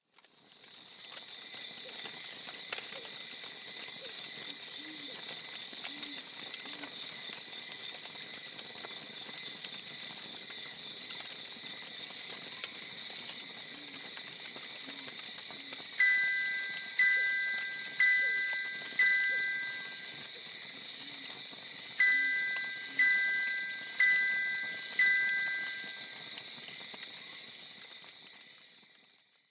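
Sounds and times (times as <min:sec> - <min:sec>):
Google Pixel 4 alarm tone: 0:16.0 - 0:20.2, 0:22.0 - 0:26.2.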